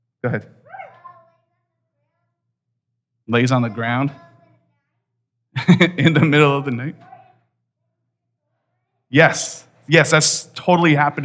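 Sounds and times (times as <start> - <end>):
speech: 0.2 - 0.6, 3.3 - 4.3, 5.6 - 7.1, 9.1 - 11.2
child imitating a dog bark with a throaty woof: 0.7 - 1.4
laughter: 5.6 - 7.0.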